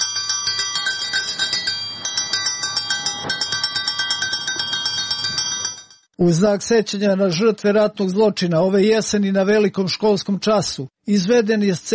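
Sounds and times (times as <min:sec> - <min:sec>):
school bell ringing with rapid metallic clatter: 0:00.0 - 0:06.1
speech: 0:06.2 - 0:11.9.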